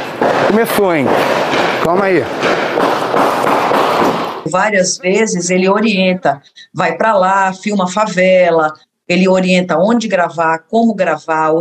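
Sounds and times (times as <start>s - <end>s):
faint distant gunshots: 0.0s - 4.4s
dense steady noise: 0.0s - 11.6s
speech: 0.5s - 2.6s, 4.4s - 11.6s.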